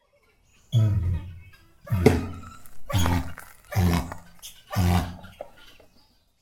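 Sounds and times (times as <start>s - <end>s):
southern cassowary Casuarius casuarius calling: 0.7s - 5.8s.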